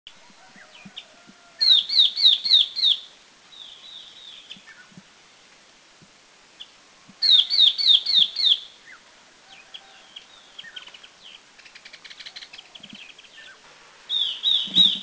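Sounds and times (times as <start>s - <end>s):
Yellow-eyed Babbler calling at Doi Ang Khan in Thailand: 1.6s - 3.0s, 7.2s - 9.0s, 10.2s - 15.0s.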